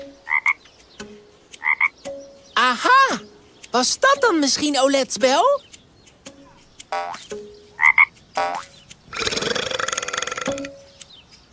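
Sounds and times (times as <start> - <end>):
frog croaking: 0.2 - 0.6, 1.6 - 2.0, 6.9 - 7.2, 7.8 - 10.8
speech: 2.6 - 5.7.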